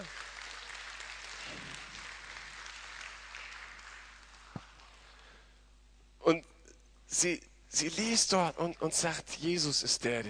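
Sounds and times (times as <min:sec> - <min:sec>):
audience applause: 0:00.0 - 0:05.1
speech: 0:07.1 - 0:10.2.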